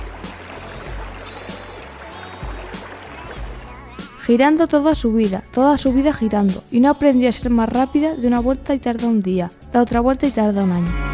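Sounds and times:
rushing river water: 0:00.0 - 0:08.5
speech: 0:04.3 - 0:11.1.

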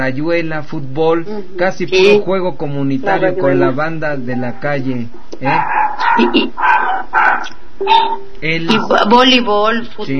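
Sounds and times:
speech: 0:00.0 - 0:06.8, 0:07.8 - 0:10.1
several dogs barking: 0:05.4 - 0:08.2.

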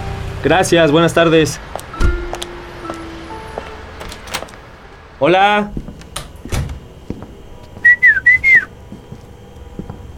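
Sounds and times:
speech: 0:00.4 - 0:02.1, 0:05.2 - 0:05.9
person whistling a short bright melodic phrase: 0:07.8 - 0:08.7.

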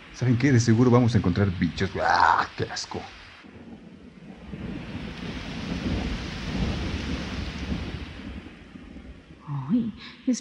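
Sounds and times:
deep continuous rumble of thunder: 0:00.0 - 0:10.4
steady heavy rain pouring during a thunderstorm: 0:00.0 - 0:10.4
speech: 0:00.2 - 0:03.6, 0:10.0 - 0:10.4.

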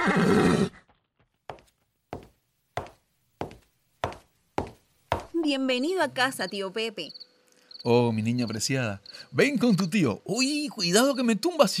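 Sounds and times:
speech: 0:00.0 - 0:00.8, 0:05.4 - 0:07.2, 0:07.8 - 0:11.7
horse whinnying: 0:00.0 - 0:00.9.

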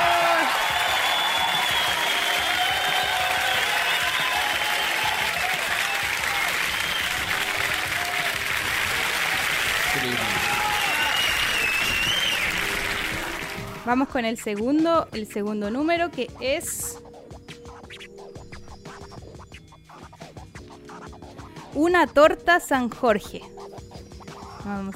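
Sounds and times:
people cheering and calling out: 0:00.0 - 0:13.8
audience applauding: 0:00.0 - 0:13.9
speech: 0:13.9 - 0:17.0, 0:21.8 - 0:23.6, 0:24.6 - 0:24.9.

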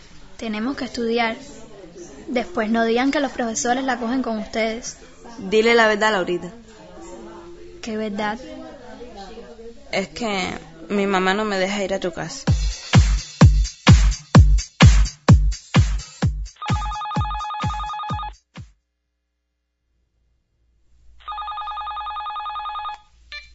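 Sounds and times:
speech: 0:00.4 - 0:01.6, 0:02.3 - 0:06.6, 0:07.8 - 0:08.6, 0:09.9 - 0:12.6
heavy rhythmic thumps: 0:12.5 - 0:18.7
telephone ringing with electronic trilling tone: 0:16.6 - 0:18.4, 0:21.2 - 0:23.5.

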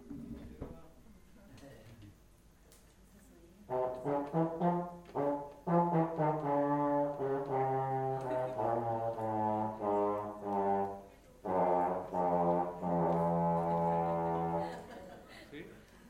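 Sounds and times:
euphonium playing a short phrase of mellow brass notes: 0:03.7 - 0:14.9
laughter: 0:07.9 - 0:09.3, 0:13.1 - 0:16.0.

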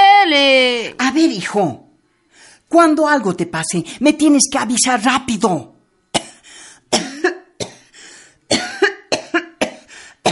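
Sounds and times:
speech: 0:01.2 - 0:01.8, 0:02.7 - 0:05.7
person having a harsh coughing fit: 0:06.2 - 0:10.3
person gasping: 0:06.4 - 0:06.9, 0:07.8 - 0:08.5, 0:09.8 - 0:10.3.

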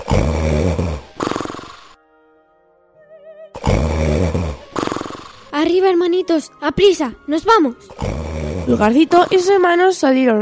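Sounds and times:
loud rough rumbling snoring: 0:00.0 - 0:02.0, 0:03.6 - 0:05.5, 0:07.9 - 0:09.6
speech: 0:05.6 - 0:08.1, 0:08.7 - 0:10.3.

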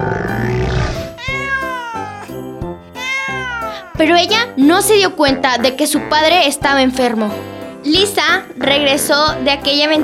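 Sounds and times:
fluffy cat meowing: 0:00.9 - 0:04.1
speech: 0:04.0 - 0:10.0.

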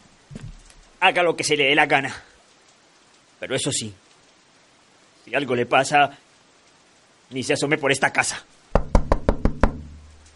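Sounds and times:
speech: 0:01.0 - 0:02.3, 0:03.4 - 0:04.0, 0:05.3 - 0:06.2, 0:07.3 - 0:08.6
loud knocking on a door: 0:08.7 - 0:10.1.

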